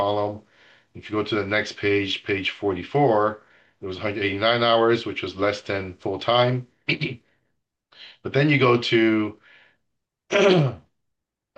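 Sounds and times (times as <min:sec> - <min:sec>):
speech: 0:00.0 - 0:07.2, 0:08.0 - 0:09.4, 0:10.3 - 0:10.8
person coughing: 0:10.3 - 0:10.9.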